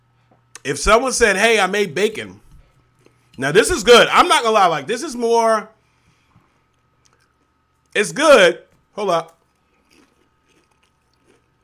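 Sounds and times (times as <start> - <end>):
low hum: 0.0 - 11.6
speech: 0.6 - 2.4, 3.4 - 5.8, 8.0 - 9.4
person chewing crunchy sweet food: 6.6 - 8.0, 9.2 - 11.6.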